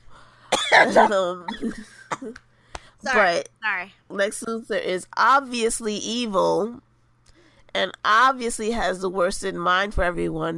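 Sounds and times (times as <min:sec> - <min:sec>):
breaths: 0:00.0 - 0:00.5, 0:02.5 - 0:03.0, 0:07.2 - 0:07.7
theatrical fake coughs: 0:00.5 - 0:02.4
speech: 0:00.8 - 0:06.9, 0:07.7 - 0:10.5.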